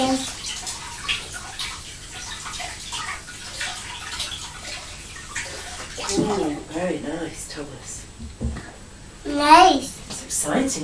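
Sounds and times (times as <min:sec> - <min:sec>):
splashes of strawberries being rinsed under tap water: 0:00.0 - 0:06.9
running tap water: 0:00.0 - 0:10.8.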